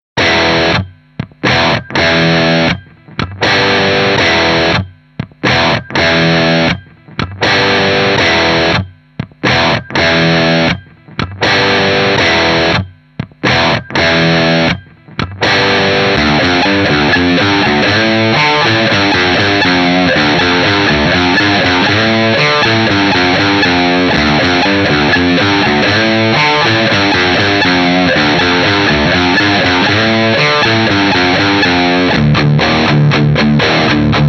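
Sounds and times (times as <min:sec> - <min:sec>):
dirty guitar riffs: 0:00.2 - 0:34.2.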